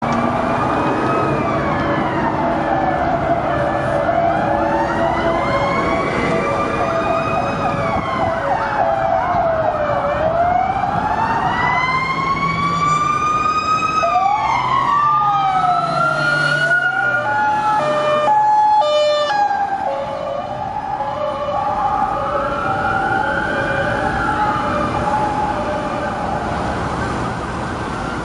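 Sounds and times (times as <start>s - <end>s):
siren: 0.0s - 28.2s.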